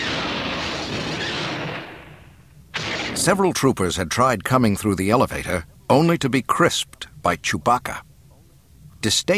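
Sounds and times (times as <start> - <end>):
loud continuous barrage of rumbling explosions: 0.0 - 3.7
speech: 3.2 - 8.1, 9.0 - 9.3.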